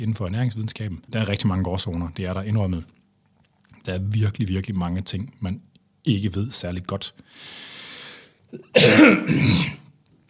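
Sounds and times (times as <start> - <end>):
speech: 0.0 - 3.0, 3.9 - 7.7, 8.5 - 9.8
person coughing: 8.5 - 9.9.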